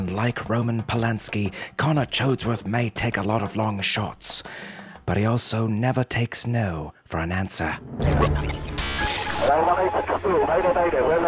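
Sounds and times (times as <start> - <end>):
speech: 0.1 - 11.2
garbled distorted voice over an intercom: 8.0 - 11.2
harsh bursts of radio static and crackle: 8.1 - 11.2.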